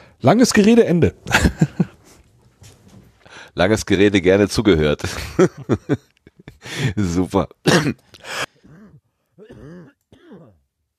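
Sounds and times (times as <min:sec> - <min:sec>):
speech: 0:00.2 - 0:01.7, 0:03.6 - 0:08.4
laughter: 0:01.3 - 0:02.0
person coughing: 0:07.7 - 0:10.6
throat-clearing grunts: 0:07.7 - 0:10.7.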